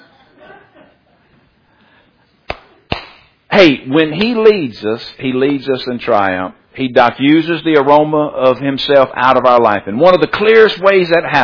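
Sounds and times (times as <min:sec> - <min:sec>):
sharp loud Gerber slap demonstration: 0:02.5 - 0:03.4
speech: 0:03.6 - 0:11.4.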